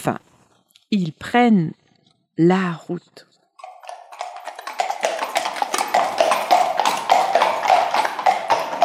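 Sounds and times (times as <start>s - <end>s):
speech: 0.0s - 0.3s, 0.9s - 1.8s, 2.4s - 3.3s
horse hooves galloping: 3.6s - 8.8s.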